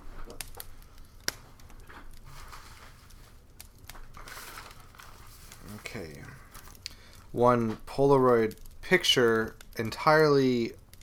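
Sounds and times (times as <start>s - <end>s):
rummaging through a crinkling brown paper bag: 2.2s - 7.4s
speech: 7.3s - 10.8s.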